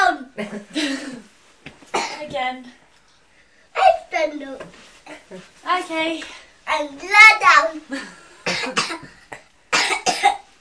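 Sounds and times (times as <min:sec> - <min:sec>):
speech: 0:00.4 - 0:01.1, 0:02.3 - 0:02.8, 0:04.2 - 0:09.2
harsh wet hacking cough: 0:00.7 - 0:01.3, 0:01.9 - 0:02.3, 0:07.9 - 0:10.5.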